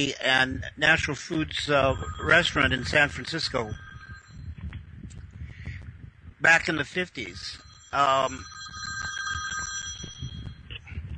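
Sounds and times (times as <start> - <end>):
speech: 0.0 - 3.8, 6.4 - 8.6
telephone bell ringing: 1.6 - 4.6, 7.2 - 10.9.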